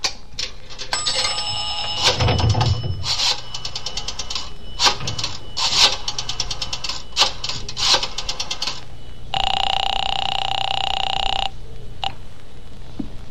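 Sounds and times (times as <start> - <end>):
telephone ring tone: 0.9 - 11.6.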